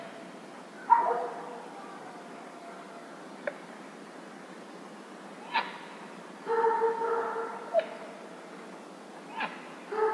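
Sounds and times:
dog barking at a lake near a village in the evening: 0.9s - 1.7s, 6.5s - 7.9s, 9.9s - 10.1s.

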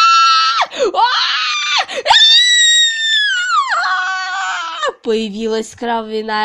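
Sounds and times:
cat screeching in pain while giving birth: 0.0s - 5.0s
speech: 5.1s - 6.4s.

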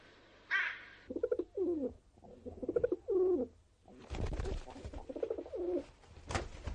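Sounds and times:
pigeons cooing: 0.5s - 3.5s, 4.6s - 5.8s
flapping or rustling noise: 3.9s - 6.7s.

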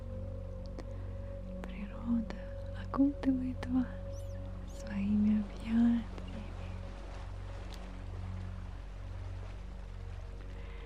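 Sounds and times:
ocean waves: 0.8s - 10.8s
speech: 2.1s - 4.0s, 4.8s - 6.2s.

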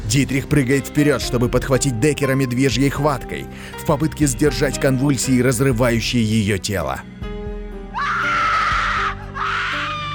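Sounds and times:
speech: 0.1s - 7.2s
gasp: 3.5s - 3.8s
woman screaming shrill inhuman screams: 7.9s - 10.1s.

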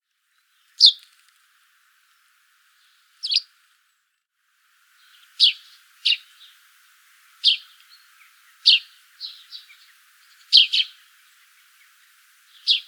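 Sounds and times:
Eurasian tree sparrow Passer montanus chirping: 0.5s - 1.1s, 2.8s - 3.5s, 5.0s - 12.8s.

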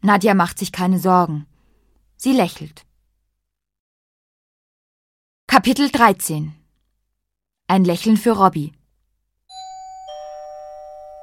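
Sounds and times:
speech: 0.0s - 1.5s, 2.2s - 2.8s, 5.5s - 6.6s, 7.7s - 8.8s
two-tone doorbell chime at the front door of a home: 9.5s - 11.2s.

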